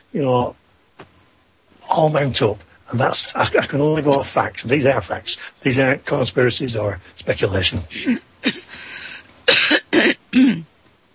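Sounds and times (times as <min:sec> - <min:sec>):
speech: 0:00.1 - 0:00.6, 0:01.9 - 0:08.6, 0:10.0 - 0:10.7
person coughing harshly: 0:07.9 - 0:08.8, 0:09.5 - 0:10.7
soft breathy intake of air: 0:08.0 - 0:09.3.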